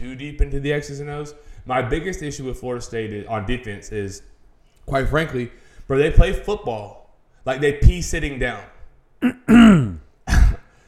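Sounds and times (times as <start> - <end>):
speech: 0.1 - 9.6
man clearing his throat: 9.2 - 10.7.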